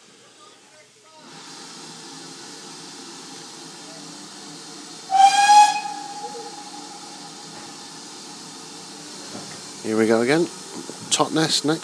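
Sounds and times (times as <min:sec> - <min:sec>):
steady hiss of escaping steam from a steam locomotive: 0:01.2 - 0:11.8
steam locomotive whistle blast: 0:05.1 - 0:07.6
speech: 0:09.8 - 0:11.8.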